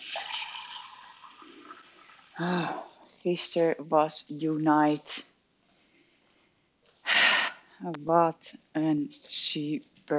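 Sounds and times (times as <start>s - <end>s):
water running from a tap into a glass: 0.0s - 2.6s
speech: 2.4s - 5.3s, 7.8s - 10.1s.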